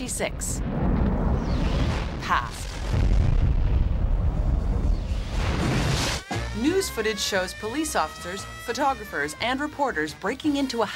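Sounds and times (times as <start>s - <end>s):
speech: 0.0s - 0.9s, 2.2s - 3.0s, 6.6s - 10.9s
bomb dropped and exploding in an animated sequence: 0.6s - 6.2s.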